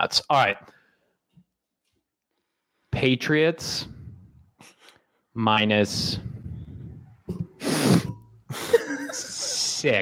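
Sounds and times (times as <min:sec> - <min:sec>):
speech: 0:00.0 - 0:00.8, 0:03.0 - 0:04.0, 0:05.4 - 0:06.3, 0:09.2 - 0:10.0
breathy nasal bursts: 0:07.6 - 0:08.2
sniffing close to microphone: 0:07.6 - 0:08.2
laughter: 0:08.5 - 0:10.0.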